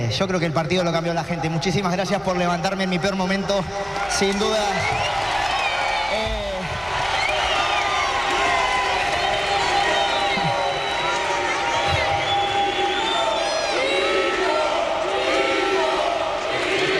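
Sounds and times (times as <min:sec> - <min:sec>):
speech: 0:00.0 - 0:05.2
large arena crowd cheering in an ovation: 0:00.9 - 0:16.9
whistles from an arena crowd: 0:04.6 - 0:06.2, 0:07.1 - 0:08.2, 0:09.6 - 0:13.8.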